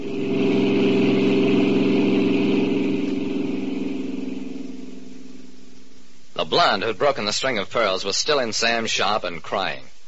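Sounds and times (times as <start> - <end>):
car engine running: 0.0 - 5.9
speech: 6.5 - 9.9.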